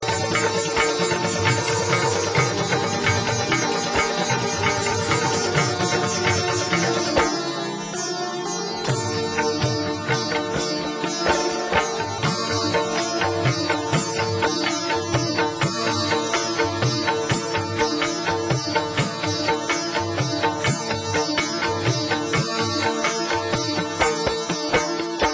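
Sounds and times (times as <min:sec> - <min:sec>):
sitar rhythm: 0:00.0 - 0:25.3.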